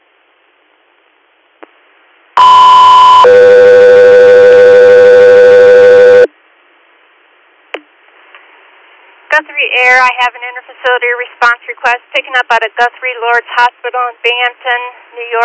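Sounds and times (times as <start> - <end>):
radio dispatch sustained electronic alert tones: 2.4 - 6.3
speech: 10.1 - 15.4.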